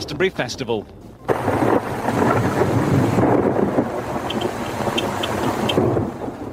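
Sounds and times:
heavy rain downpour: 1.3 - 6.5.

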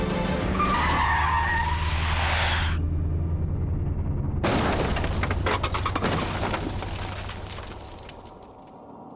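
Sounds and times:
car tire screech from hard braking: 0.1 - 3.3
harsh rattling crunching noise: 4.5 - 8.7.

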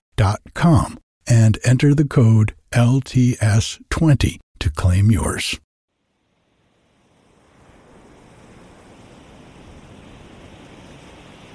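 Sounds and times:
speech: 0.2 - 5.6
ocean surf rolling in: 7.5 - 11.5.

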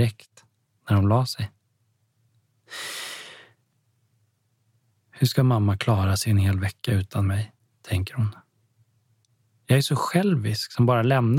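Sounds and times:
speech: 0.0 - 0.3, 0.9 - 1.6, 5.2 - 8.4, 9.7 - 11.3
heavy breathing of a sleeping man: 2.7 - 3.6.

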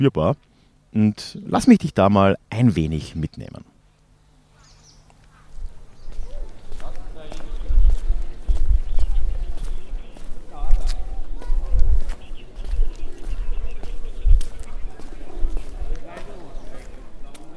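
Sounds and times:
speech: 0.0 - 3.7
low murmur of outdoor noise: 3.8 - 17.5
footsteps of a person strolling through city streets and squares: 5.2 - 17.5.

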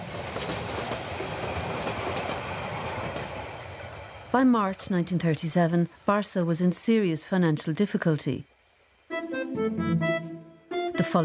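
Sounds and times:
train rumbling on rails at night: 0.0 - 7.8
speech: 4.3 - 8.6, 9.5 - 10.2, 11.0 - 11.2.

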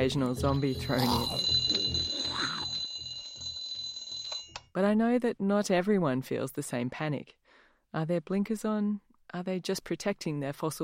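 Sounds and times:
speech: 0.0 - 1.8, 4.8 - 10.8
alarm clock ringing with shrill high tone and fast pulsing beat: 0.0 - 4.6.

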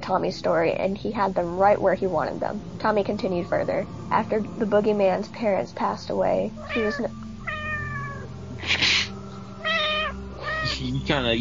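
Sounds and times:
speech: 0.1 - 7.2, 10.8 - 11.4
cat meowing: 6.6 - 8.3, 9.6 - 10.9.

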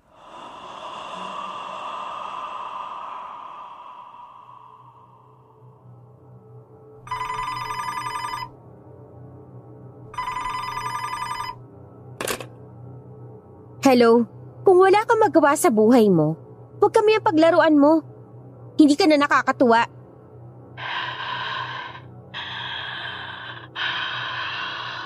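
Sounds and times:
heavy breathing-like noise: 0.0 - 7.0, 20.6 - 25.0
hotel telephone ringing: 7.1 - 8.5, 10.2 - 11.6
speech: 13.9 - 18.1, 18.8 - 20.0.

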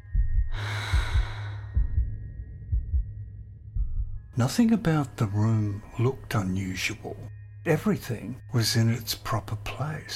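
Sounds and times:
low regular heartbeat-like thumping: 0.0 - 4.4
deep slow breathing from someone trying to calm down: 0.2 - 3.0
speech: 4.4 - 10.1.

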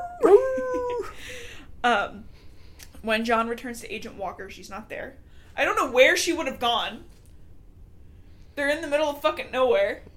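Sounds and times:
wolf howl sound effect: 0.0 - 1.1
brief yelping cry: 0.0 - 1.2
speech: 1.8 - 2.3, 3.0 - 7.2, 8.6 - 10.1.

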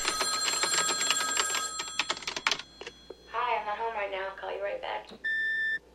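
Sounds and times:
old-fashioned telephone bell ringing with rapid metallic trill: 0.0 - 3.4
speech: 4.3 - 5.4.

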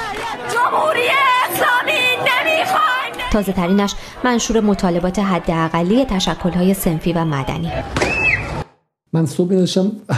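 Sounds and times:
large protest crowd chanting a slogan outdoors: 0.0 - 7.9
speech: 0.7 - 1.8, 3.3 - 8.3, 9.1 - 10.1.

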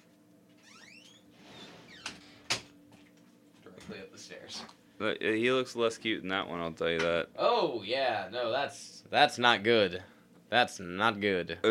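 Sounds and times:
door creaking open on squeaky hinges: 0.6 - 2.7
speech: 3.9 - 11.7.

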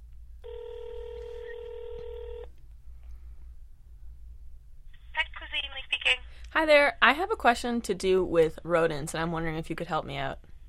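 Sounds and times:
low hum: 0.0 - 10.6
telephone ringing tone down a phone line: 0.4 - 2.5
speech: 6.6 - 10.4.

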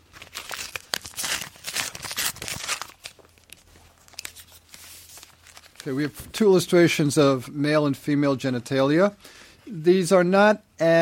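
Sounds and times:
paper envelope being opened with crinkling, rustling and tearing: 0.0 - 6.4
speech: 5.8 - 11.0.

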